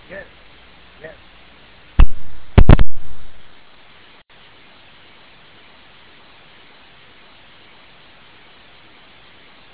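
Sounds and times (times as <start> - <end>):
open-mic hiss: 0.0 - 9.7
radio static crackle: 2.0 - 3.5.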